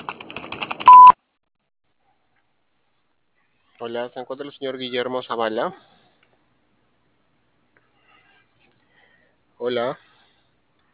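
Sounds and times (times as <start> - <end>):
touch-tone telephone dialing beeps: 0.9 - 1.2
speech: 3.8 - 5.9, 9.6 - 10.1.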